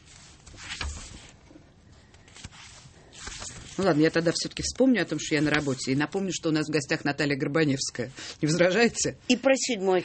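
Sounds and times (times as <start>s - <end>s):
paper book pages turning slowly: 0.0s - 6.1s
speech: 3.8s - 10.0s.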